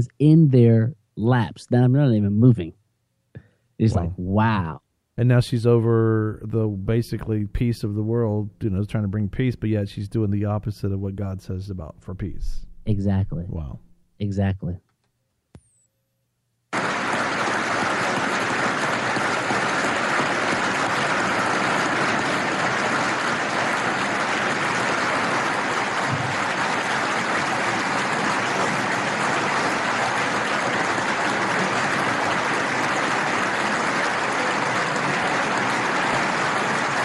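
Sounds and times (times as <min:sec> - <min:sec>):
speech: 0:00.0 - 0:02.8, 0:03.8 - 0:14.8
large crowd applauding: 0:16.7 - 0:37.0.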